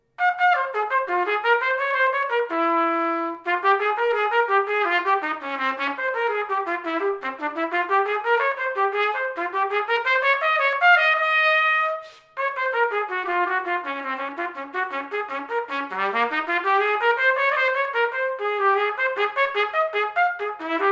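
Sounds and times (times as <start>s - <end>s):
trumpet playing a baroque courante for cello: 0.0s - 20.9s.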